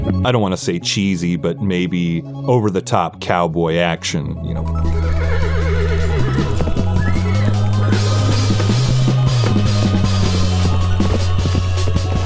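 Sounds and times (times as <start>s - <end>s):
speech: 0.2s - 5.1s
horses neighing and whinnying wildly: 4.5s - 12.2s
faint hoof clatter: 6.1s - 12.2s.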